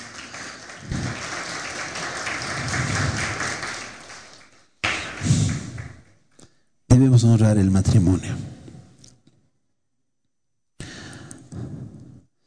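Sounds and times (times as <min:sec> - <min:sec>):
audience applauding: 0:00.0 - 0:06.2
speech: 0:07.0 - 0:08.5.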